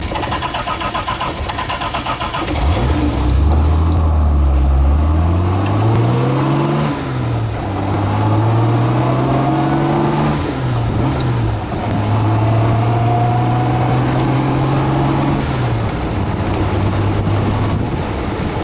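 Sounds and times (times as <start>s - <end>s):
Jaguar Series 1 car: 0.0s - 18.6s.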